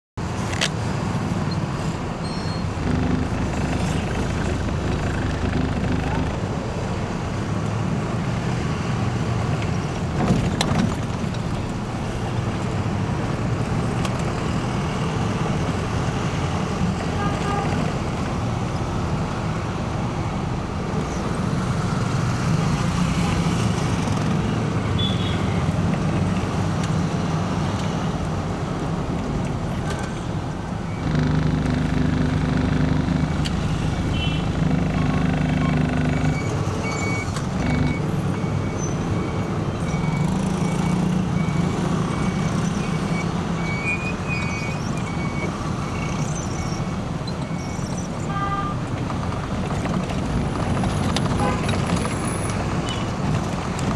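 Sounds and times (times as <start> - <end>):
vehicle ride to Pharping from Boudha in Kathmandu Nepal: 0.2 - 53.9.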